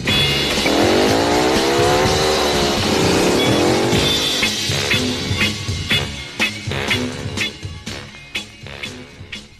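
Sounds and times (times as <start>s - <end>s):
motorcycle engine revving: 0.0s - 9.5s.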